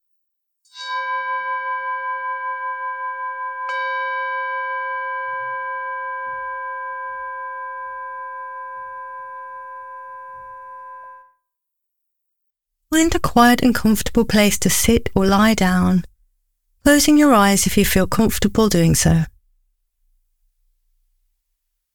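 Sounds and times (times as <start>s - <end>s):
meditation chime ringing: 0.7s - 11.4s
speech: 13.0s - 16.1s, 16.8s - 19.3s.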